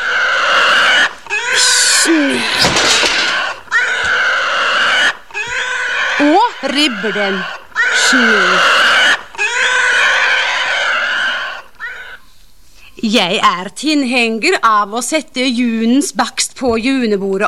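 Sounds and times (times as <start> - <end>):
pig squealing and grunting in harsh shrill bursts: 0.0 - 12.2
speech: 6.6 - 8.8, 13.0 - 17.4.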